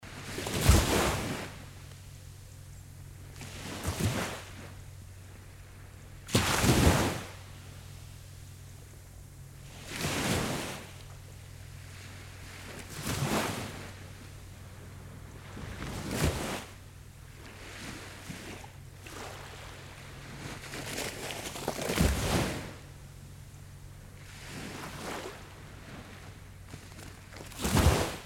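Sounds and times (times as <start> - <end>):
sea on thick sand: 0.0 - 28.2.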